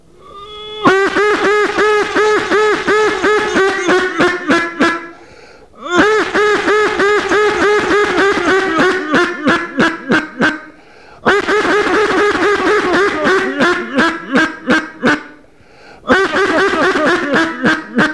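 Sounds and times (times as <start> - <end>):
duck call quacking to lure a duck: 0.2 - 15.4, 16.1 - 18.1
laughter: 0.9 - 5.2, 5.9 - 15.4, 16.1 - 18.1
person breathing: 5.1 - 5.9, 10.8 - 11.2, 15.5 - 16.1.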